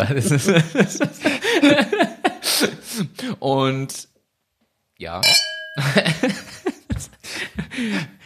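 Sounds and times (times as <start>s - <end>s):
speech: 0.0s - 1.8s, 3.4s - 4.1s, 5.0s - 6.5s
laughter and chuckling: 0.0s - 3.2s, 5.8s - 8.2s
glasses clinking in a toast: 5.2s - 6.5s.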